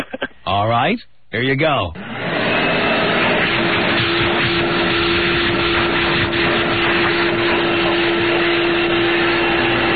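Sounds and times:
speech: 0.5s - 2.0s
vacuum cleaner running: 2.0s - 9.9s.

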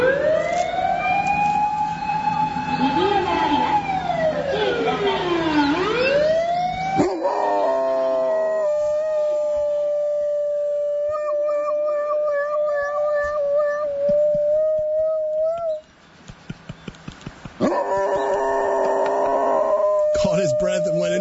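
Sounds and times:
hound howling in imitation of a siren: 0.0s - 15.8s, 17.6s - 21.2s.

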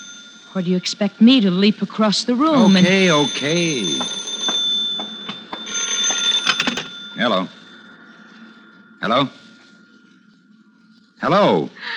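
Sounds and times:
telephone bell ringing: 0.0s - 1.7s, 2.4s - 10.1s
speech: 0.5s - 4.3s, 7.2s - 7.6s, 9.0s - 9.4s, 11.2s - 11.9s.

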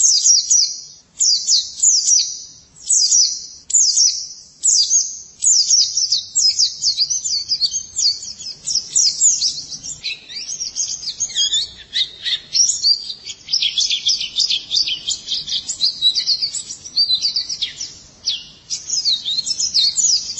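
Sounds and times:
white-eye song of quick thin high twittering phrases and trills: 0.0s - 20.3s.

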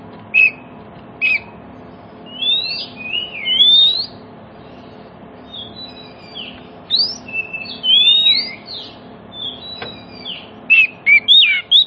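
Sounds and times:
Oriental magpie-robin song: 0.3s - 1.6s, 2.2s - 11.8s.

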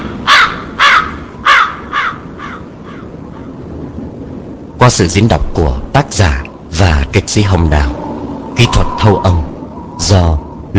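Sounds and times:
crow cawing: 0.0s - 3.6s
speech: 4.9s - 8.0s, 8.6s - 10.7s.

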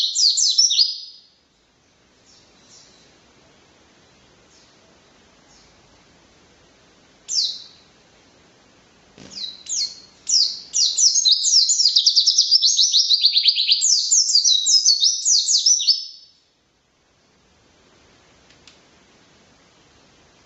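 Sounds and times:
white-eye twittering song with high downslurred notes: 0.0s - 1.4s, 7.3s - 7.9s, 9.3s - 16.4s.

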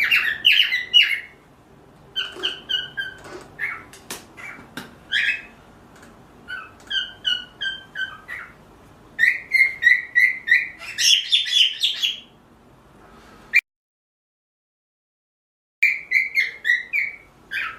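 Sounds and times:
pearl cockatiel chirping calls: 0.0s - 1.4s, 2.1s - 5.6s, 6.4s - 8.6s, 9.2s - 12.3s, 15.8s - 17.7s.

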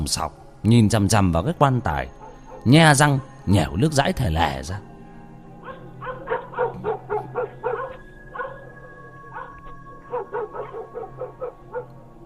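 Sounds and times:
speech: 0.0s - 4.9s
two black dogs barking wildly in a yard: 2.2s - 3.4s, 5.6s - 12.0s.

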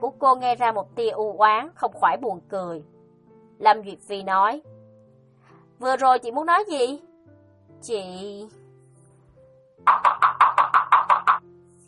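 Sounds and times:
speech: 0.2s - 2.9s, 3.6s - 4.8s, 5.8s - 7.1s, 7.8s - 8.6s
knuckles knocking on a wooden door: 9.9s - 11.4s.

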